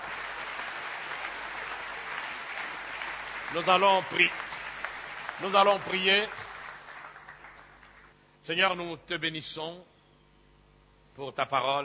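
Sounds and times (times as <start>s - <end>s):
church congregation applauding: 0.0s - 8.2s
speech: 3.5s - 4.5s, 5.4s - 6.5s, 8.5s - 9.9s, 11.2s - 11.8s.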